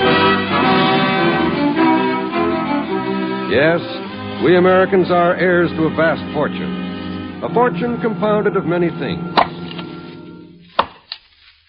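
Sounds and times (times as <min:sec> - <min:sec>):
lingering musical tone: 0:00.0 - 0:10.6
speech: 0:03.6 - 0:06.8, 0:07.4 - 0:09.4
axe strikes on a log: 0:09.4 - 0:09.6, 0:10.7 - 0:11.2.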